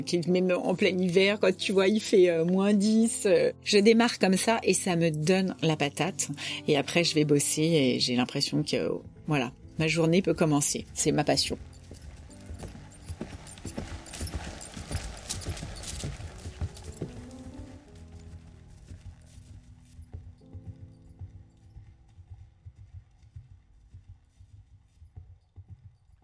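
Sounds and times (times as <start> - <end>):
speech: 0.0 - 11.7
horse hooves clip-clopping at a walk: 8.0 - 26.2.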